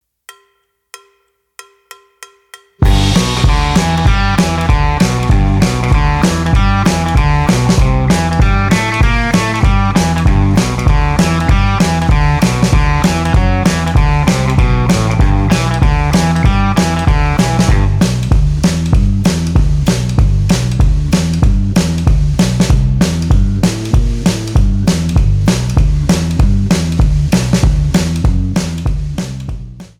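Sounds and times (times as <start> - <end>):
electric guitar boogie shuffle: 2.8 - 29.7.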